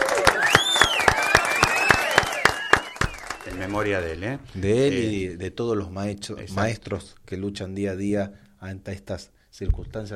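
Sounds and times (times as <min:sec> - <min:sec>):
steady rhythmic clapping in memory of a teacher: 0:00.0 - 0:04.4
speech: 0:03.6 - 0:10.1.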